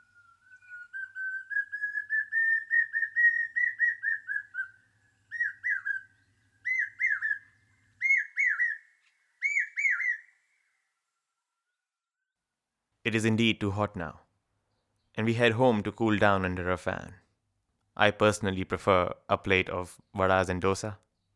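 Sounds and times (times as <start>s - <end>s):
common hawk-cuckoo whistled song rising in pitch: 0.0s - 11.8s
speech: 13.1s - 14.2s, 15.2s - 17.2s, 18.0s - 21.0s.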